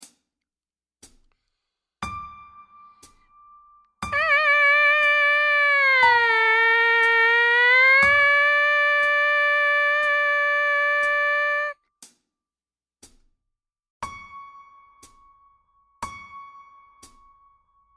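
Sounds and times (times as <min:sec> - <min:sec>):
buzzing sampler bass line: 0:04.2 - 0:11.7.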